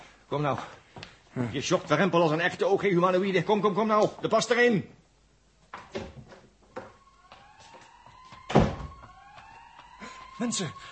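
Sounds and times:
speech: 0.3 - 5.0, 10.4 - 10.9
police siren wailing: 6.7 - 10.9.

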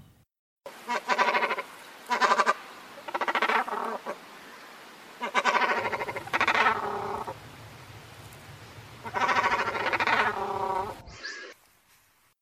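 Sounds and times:
cormorant or shag giving harsh guttural croaking calls: 0.7 - 4.2, 5.2 - 7.9, 8.6 - 11.1
low rumbling background: 5.8 - 11.2.

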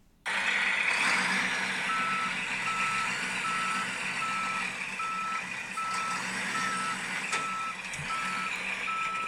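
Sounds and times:
garbage truck engine idling: 0.2 - 9.2
garbage truck reversing alarm beeping: 1.9 - 9.2.

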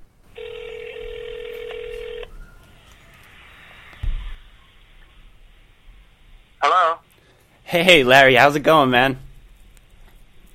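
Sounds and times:
faint telephone line hiss: 0.3 - 5.2
telephone dial tone: 0.4 - 2.3
soft thump: 4.0 - 4.4
speech: 7.7 - 9.2.

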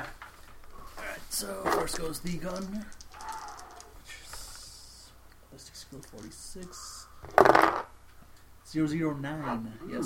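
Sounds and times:
speech: 1.4 - 3.0, 5.6 - 7.7, 8.7 - 10.0
dice rolling on a hard tabletop in a tabletop game: 1.6 - 4.4, 7.2 - 7.9.

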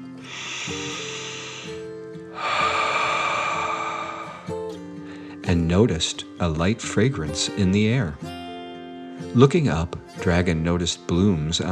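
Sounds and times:
deep breath in and out: 0.0 - 5.4
soft sustained musical tones: 0.0 - 6.3
speech: 5.5 - 8.3, 9.3 - 11.7.

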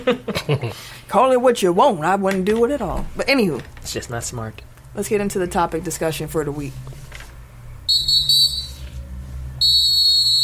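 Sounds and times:
speech: 0.0 - 7.0
shrill high-pitched whistle: 7.9 - 8.9, 9.6 - 10.4.

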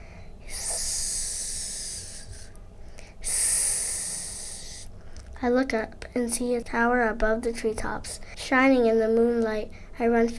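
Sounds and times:
snake hissing eerily: 0.5 - 2.5, 3.2 - 4.9
speech: 5.4 - 10.3.

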